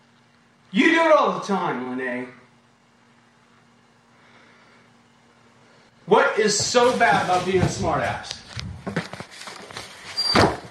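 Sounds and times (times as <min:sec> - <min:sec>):
speech: 0:00.7 - 0:02.4, 0:06.1 - 0:08.7
light shuffling: 0:06.5 - 0:10.1
door closed by a woman, squeaking shut with a solid thud: 0:10.1 - 0:10.7.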